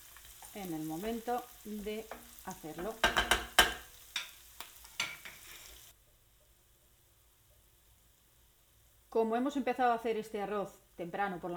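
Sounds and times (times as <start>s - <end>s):
mushrooms confited in sofrito sizzling in a pan: 0.0s - 11.5s
speech: 0.6s - 3.6s, 9.1s - 11.5s.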